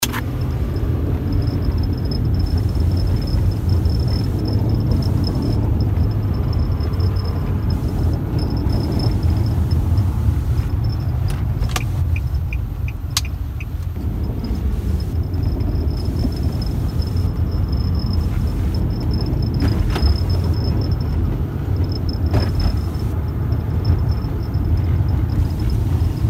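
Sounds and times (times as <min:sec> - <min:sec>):
car dashboard rattling: 0:00.0 - 0:26.2.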